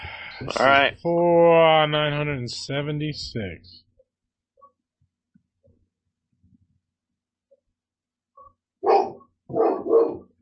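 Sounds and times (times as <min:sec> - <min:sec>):
speech: 0:00.4 - 0:03.8
dogs barking outside: 0:08.8 - 0:10.3.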